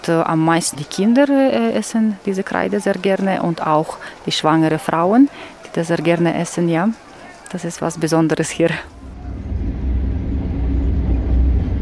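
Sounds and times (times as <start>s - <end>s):
speech: 0.0s - 9.0s
train rumbling along the tracks: 9.1s - 11.7s.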